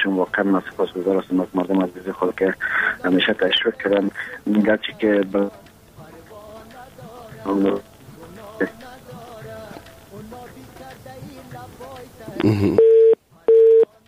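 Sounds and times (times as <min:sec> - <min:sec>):
speech: 0:00.0 - 0:05.6, 0:07.4 - 0:07.9, 0:08.6 - 0:08.8, 0:12.4 - 0:12.9
telephone line tone beeps after a call dropped: 0:12.8 - 0:13.9.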